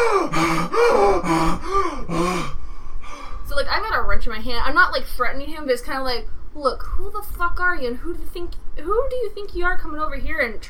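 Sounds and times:
person imitating a man gasping for air: 0.0s - 3.4s
speech: 4.1s - 10.6s.

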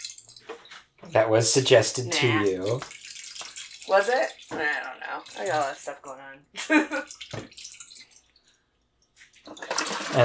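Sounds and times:
water being poured heavily at a water stop: 0.0s - 10.2s
speech: 1.1s - 3.0s, 3.9s - 7.5s
water swished around: 1.5s - 6.3s, 6.9s - 8.6s, 9.3s - 10.2s.

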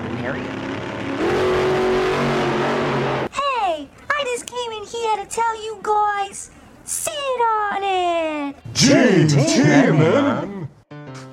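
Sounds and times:
motorcycle engine revving: 0.0s - 3.3s
speech: 0.2s - 0.6s, 5.1s - 10.5s.

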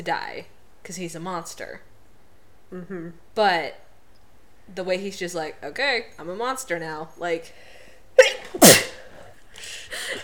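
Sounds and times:
speech: 0.0s - 1.9s, 2.7s - 3.8s, 4.7s - 8.9s
person sneezing: 8.2s - 9.2s.

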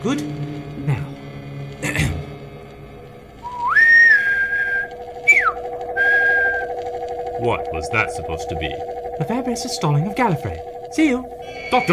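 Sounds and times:
speech: 0.0s - 1.1s, 7.4s - 11.9s
steady low hum: 0.0s - 11.9s
person whistling an imitation bird call: 3.4s - 6.7s.

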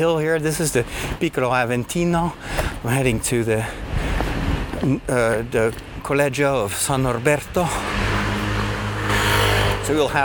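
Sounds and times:
speech: 0.0s - 3.9s, 4.8s - 8.0s, 9.9s - 10.2s
car or scooter engine humming on a street in Rome: 7.6s - 10.2s.

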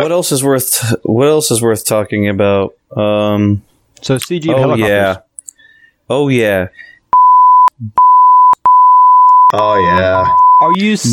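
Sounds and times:
speech: 0.0s - 5.3s, 6.1s - 6.9s, 7.8s - 8.1s, 9.5s - 11.1s
loud 1000 Hz censor beeps: 7.2s - 10.8s.

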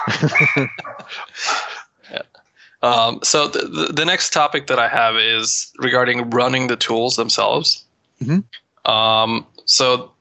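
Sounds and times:
dog barking and yelping: 0.0s - 1.2s
laughter: 0.0s - 7.8s, 8.9s - 10.0s
speech: 0.2s - 10.1s.

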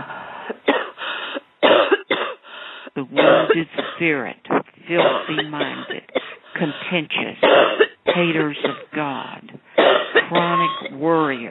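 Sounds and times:
harsh throaty coughing: 0.6s - 2.4s, 3.2s - 4.0s, 5.0s - 6.7s, 7.4s - 8.9s, 9.8s - 11.0s
speech: 3.0s - 9.4s, 10.3s - 11.4s.

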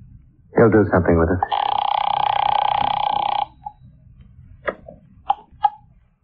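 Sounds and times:
speech: 0.6s - 1.6s
telephone ringing: 1.4s - 3.8s.

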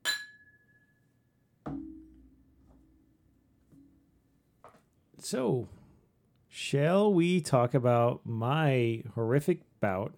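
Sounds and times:
glasses clinking in a toast: 0.0s - 1.0s
speech: 5.2s - 5.8s, 6.5s - 10.1s.

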